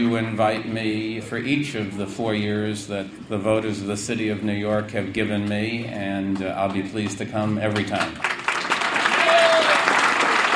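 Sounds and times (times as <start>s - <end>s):
speech: 0.0s - 8.3s
crowd applauding at a New York City mayoral event: 7.8s - 10.5s.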